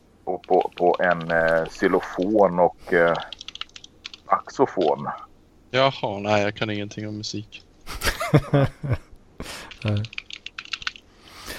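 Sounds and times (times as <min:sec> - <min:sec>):
speech: 0:00.3 - 0:03.4, 0:04.3 - 0:07.7, 0:08.3 - 0:10.2
rapid typing on a computer keyboard: 0:00.4 - 0:01.9, 0:03.1 - 0:04.2, 0:09.7 - 0:11.0
laughter: 0:07.9 - 0:09.0
breaths: 0:09.4 - 0:09.8, 0:11.1 - 0:11.5.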